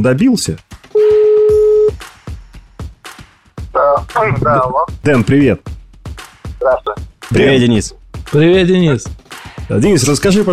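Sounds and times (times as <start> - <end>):
speech: 0.0 - 0.7, 4.1 - 5.7, 6.6 - 10.5
telephone dial tone: 1.0 - 2.0.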